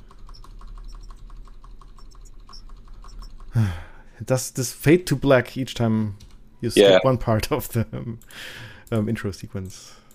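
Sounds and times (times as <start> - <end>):
computer keyboard keys clicking while starting a computer game: 0.1 - 3.5
speech: 3.6 - 10.0.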